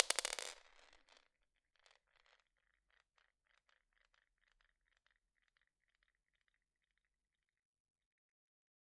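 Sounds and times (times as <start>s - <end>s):
medium wine glass dropping on floor: 0.0s - 1.2s.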